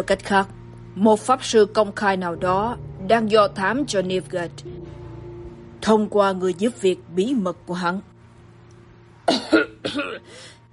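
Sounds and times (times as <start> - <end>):
speech: 0.0 - 5.0, 5.8 - 8.1, 9.3 - 10.5
voice acting out a cough: 9.3 - 10.6.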